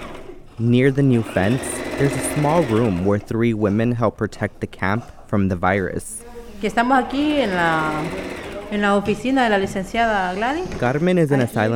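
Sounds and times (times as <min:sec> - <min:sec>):
sewing machine motor humming and whirring: 0:00.0 - 0:03.3, 0:06.9 - 0:10.6
speech: 0:00.6 - 0:11.7.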